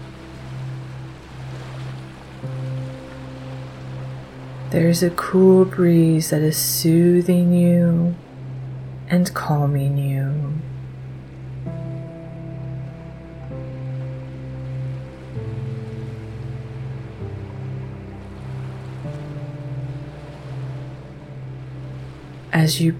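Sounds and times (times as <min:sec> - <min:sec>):
ocean waves washing onto a shore: 0:00.0 - 0:22.9
sustained mellow musical drone with slowly shifting chords: 0:00.0 - 0:22.9
speech: 0:04.7 - 0:08.3, 0:09.1 - 0:10.7, 0:22.5 - 0:22.9.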